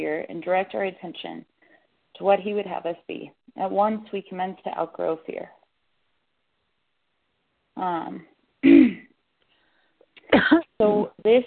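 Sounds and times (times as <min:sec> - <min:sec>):
speech: 0:00.0 - 0:01.6, 0:02.2 - 0:05.6, 0:07.8 - 0:08.8, 0:10.3 - 0:11.4
person coughing on a call: 0:08.6 - 0:09.1, 0:10.3 - 0:10.6.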